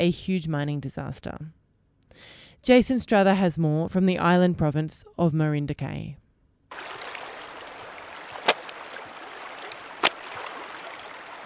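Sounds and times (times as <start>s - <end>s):
speech: 0.0s - 7.0s
rushing water of a river on Marinduque island Philippines: 6.7s - 11.4s
wet blouse slapped hard against gray shoreline stones: 6.7s - 11.4s.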